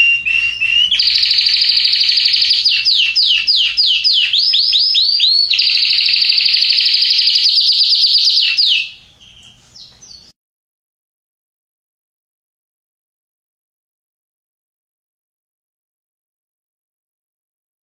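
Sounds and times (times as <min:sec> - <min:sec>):
red Belgian canary singing: 0:00.0 - 0:10.4.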